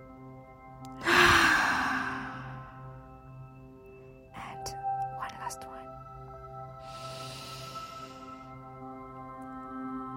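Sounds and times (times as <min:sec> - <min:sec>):
soft steady musical drone: 0:00.0 - 0:10.1
deep breath out during a breathwork practice: 0:01.0 - 0:03.0, 0:06.8 - 0:08.6.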